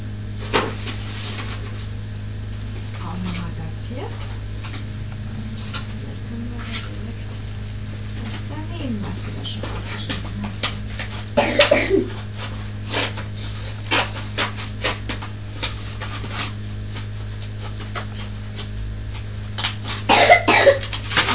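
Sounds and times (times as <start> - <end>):
low electrical hum: 0.0 - 21.3
coughing fit: 11.4 - 12.2, 20.1 - 20.9.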